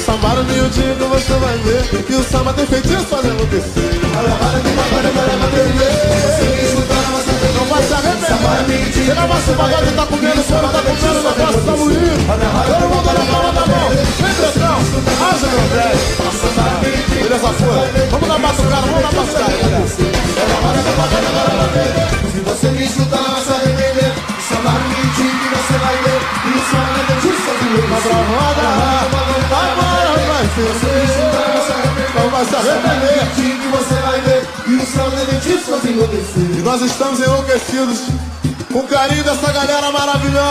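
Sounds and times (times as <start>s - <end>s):
live crowd applause and cheering at a pagode show: 0.0s - 40.4s
music at a pagode show: 0.0s - 40.4s
speech: 0.1s - 6.6s, 8.5s - 40.4s
many women screaming at a pagode show: 23.3s - 40.4s.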